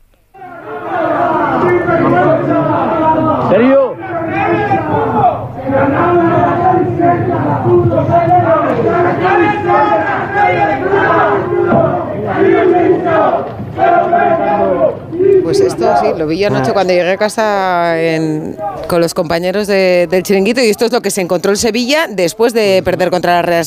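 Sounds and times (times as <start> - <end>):
small crowd of fans heckling and chanting at players: 0.3 - 17.4, 18.4 - 19.0
speech: 16.2 - 23.6.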